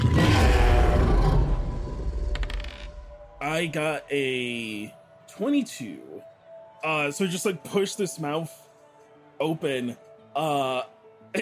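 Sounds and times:
giant Tarrasque monster roaring: 0.0 - 2.7
grinding creaking rumbles: 0.0 - 3.4
speech: 3.6 - 8.6, 9.4 - 11.3.

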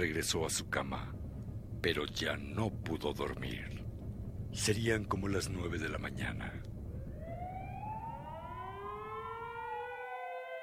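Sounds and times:
speech: 0.0 - 1.2, 1.8 - 3.8, 4.5 - 6.7
low rumble of traffic: 0.0 - 9.6
ambulance and police sirens wailing: 7.0 - 10.6.

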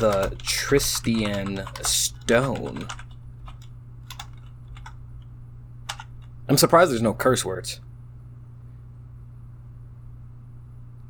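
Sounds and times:
speech: 0.0 - 3.0, 6.5 - 7.8
typing on a computer keyboard: 0.0 - 5.3, 5.9 - 6.7
steady low electrical hum: 0.0 - 11.0.

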